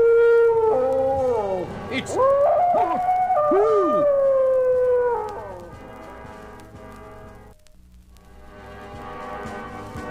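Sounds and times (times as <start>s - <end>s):
powerful gray werewolf growling challenge as an audio drama effect: 0.2s - 5.6s.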